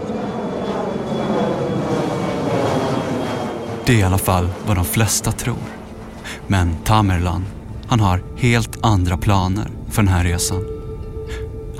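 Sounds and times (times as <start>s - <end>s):
Tupolev 134 jet airliner engine roaring on takeoff: 0.0s - 10.6s
thin high jet engine whine: 0.0s - 11.7s
speech: 3.9s - 5.8s, 6.5s - 10.8s.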